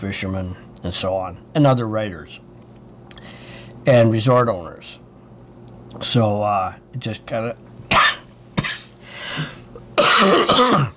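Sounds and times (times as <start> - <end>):
speech: 0.0 - 2.5, 3.8 - 5.0, 6.0 - 7.6, 10.2 - 10.9
person coughing from a cold: 7.9 - 10.9.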